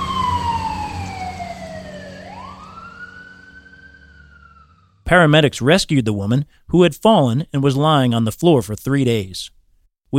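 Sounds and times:
fire truck and ambulance sirens wailing at an apartment complex: 0.0s - 5.0s
low rumble of traffic and engine noise: 0.0s - 5.1s
speech: 5.1s - 10.1s.

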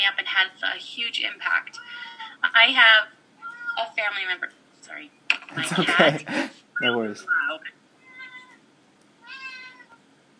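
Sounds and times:
speech: 0.1s - 3.2s, 3.8s - 7.8s
cat meowing: 3.4s - 3.9s, 8.0s - 8.6s, 9.2s - 10.0s
laughter: 5.5s - 6.6s.

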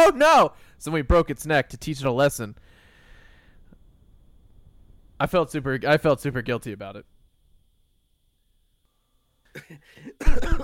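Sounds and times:
speech: 0.1s - 2.7s, 5.2s - 7.1s, 9.6s - 10.6s
person coughing harshly: 9.5s - 10.6s.

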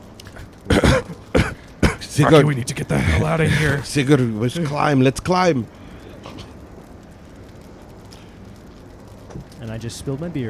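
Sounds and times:
person coughing: 0.7s - 2.2s
speech: 2.2s - 5.8s, 9.8s - 10.4s.

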